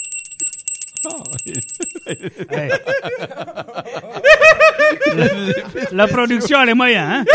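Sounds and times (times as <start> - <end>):
doorbell sound effect with rapid high metallic rings: 0.0 - 2.4
speech: 1.0 - 7.3
bursts of laughter: 1.4 - 6.5, 7.2 - 7.3.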